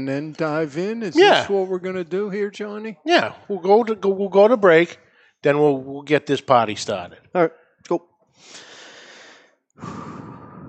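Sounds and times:
speech: 0.0 - 8.7, 9.8 - 10.2
heavy breathing: 8.4 - 10.6.

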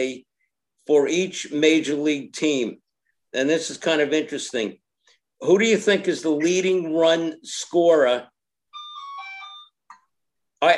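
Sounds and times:
speech: 0.0 - 4.8, 5.4 - 8.3
mobile phone ringtone with bright electronic melodic phrase: 8.7 - 9.8.

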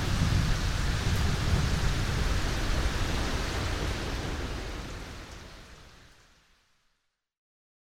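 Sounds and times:
heavy rumbling thunder during a rainstorm: 0.0 - 5.3
steady rain: 0.0 - 7.1.

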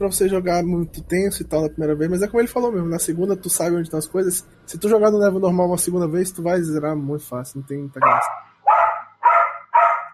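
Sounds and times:
speech: 0.0 - 8.5
sharp dog barks: 8.0 - 10.1.

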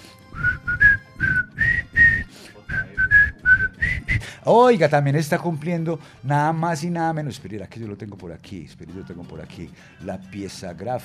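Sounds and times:
person whistling a birthday melody: 0.3 - 4.3
speech: 4.4 - 11.0.

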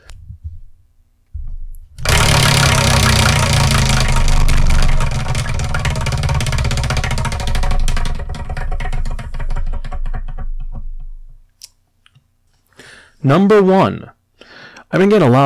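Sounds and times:
manga prize wheel spinning with ratcheting clicks: 2.0 - 10.2
speech: 13.3 - 14.2, 14.9 - 15.4.

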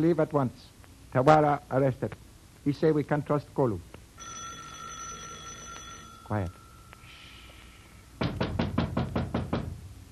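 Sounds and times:
speech: 0.0 - 4.4, 6.3 - 6.6
knocking on a door: 8.2 - 9.8.

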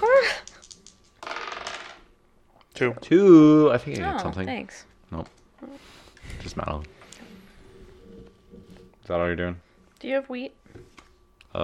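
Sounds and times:
dice tumbling and rattling across a tabletop: 0.4 - 2.1
speech: 2.8 - 7.0, 9.1 - 10.9.

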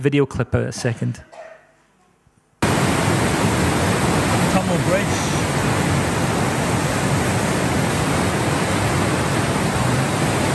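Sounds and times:
speech: 0.0 - 1.5, 4.7 - 5.4
fast-flowing river water roaring: 2.6 - 10.5.

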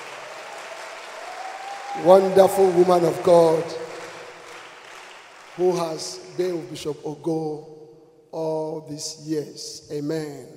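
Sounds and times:
church conference audience clapping: 0.0 - 6.7
speech: 2.0 - 3.8, 5.6 - 10.5.

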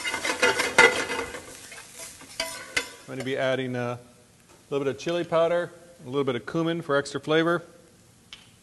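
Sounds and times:
stirring and scraping in a pan: 0.0 - 3.5
black beans with serrano and garlic sizzling in a pan over medium-high heat: 0.0 - 6.2
speech: 3.1 - 4.1, 4.7 - 7.8.

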